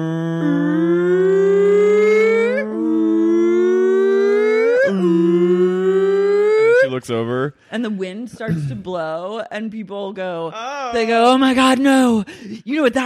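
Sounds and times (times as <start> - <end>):
voice imitating a hurricane siren: 0.0 - 7.0
speech: 7.1 - 13.0.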